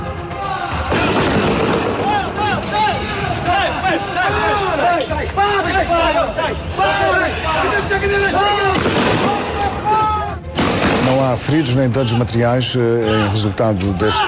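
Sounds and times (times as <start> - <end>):
crowd shouting and clamoring: 0.0 - 10.5, 13.0 - 14.2
shotgun blasts in a street: 8.8 - 9.4, 10.6 - 11.2
speech: 11.1 - 14.2.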